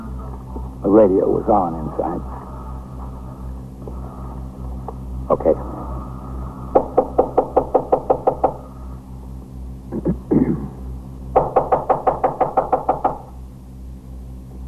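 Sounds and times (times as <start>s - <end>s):
speech: 0.9s - 2.4s, 5.3s - 5.8s
heavy knocking on an apartment door by police officers: 6.7s - 8.7s, 11.3s - 13.4s.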